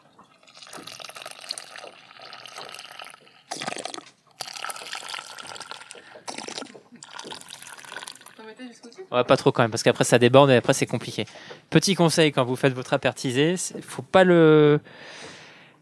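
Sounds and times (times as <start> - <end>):
water poured into a camping stove pot around a preserving jar: 0.2 - 8.4
speech: 8.6 - 15.3.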